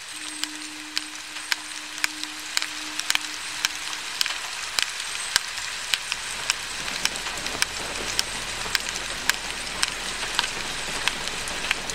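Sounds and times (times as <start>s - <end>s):
low hum: 0.0s - 11.9s
steady rain pattering: 0.0s - 11.9s.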